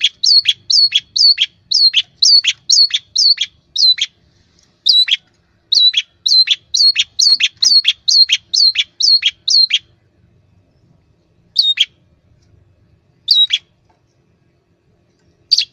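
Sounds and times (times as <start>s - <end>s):
long-tailed shrike singing buzzy two-part notes: 0.0s - 4.2s, 4.9s - 9.9s, 13.2s - 13.7s.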